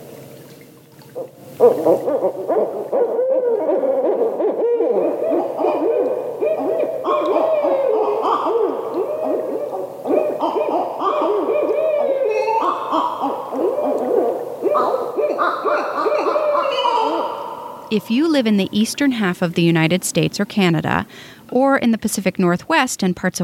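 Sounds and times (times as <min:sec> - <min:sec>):
speech: 0:01.2 - 0:05.5, 0:17.9 - 0:23.4
barred owl hooting and cackling calls: 0:01.6 - 0:17.9.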